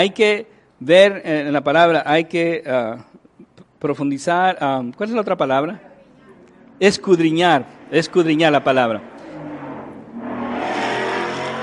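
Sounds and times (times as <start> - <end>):
speech: 0.0 - 3.1, 3.8 - 5.9, 6.8 - 9.1
motorcycle passing by: 7.4 - 11.6.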